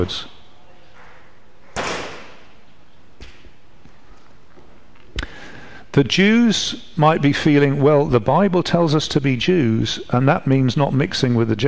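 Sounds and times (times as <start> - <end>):
speech: 0.0 - 0.3, 6.0 - 11.6
door slamming shut: 1.7 - 2.5.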